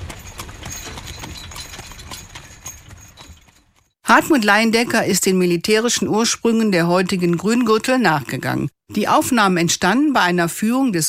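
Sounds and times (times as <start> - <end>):
horses' hooves clip-clopping pulling a wagon: 0.0 - 4.0
wagon wheels rumbling: 0.0 - 4.0
speech: 4.1 - 11.0.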